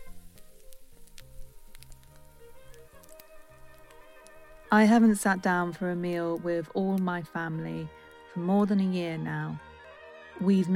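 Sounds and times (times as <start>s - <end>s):
pork schnitzel sizzling in a new frying pan: 0.0s - 6.6s
speech: 4.7s - 9.7s, 10.4s - 10.7s.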